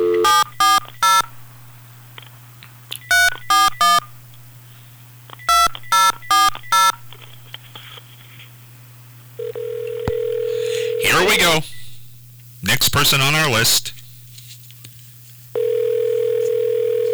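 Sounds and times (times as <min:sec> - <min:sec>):
telephone keypad tones: 0:00.0 - 0:01.3, 0:03.0 - 0:04.1, 0:05.4 - 0:07.2, 0:09.4 - 0:11.2, 0:15.6 - 0:17.1
speech: 0:13.0 - 0:14.0.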